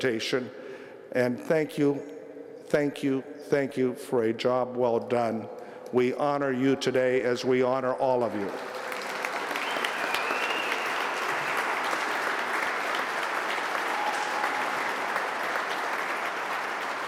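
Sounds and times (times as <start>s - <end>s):
speech: 0.0s - 8.7s
sustained applause from a large audience: 8.4s - 17.0s.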